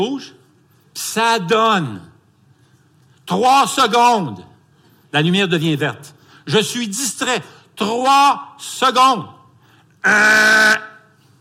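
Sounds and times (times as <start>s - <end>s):
speech: 0.0s - 0.4s, 1.0s - 2.1s, 3.3s - 4.5s, 5.1s - 9.4s, 10.0s - 10.9s
faint hum: 0.0s - 11.3s
car horn blast: 10.1s - 11.1s.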